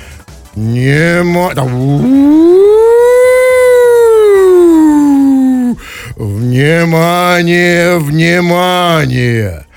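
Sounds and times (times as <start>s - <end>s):
speech: 0.6s - 2.8s, 6.2s - 9.7s
civil defense siren test wailing over loudspeakers: 1.8s - 5.4s.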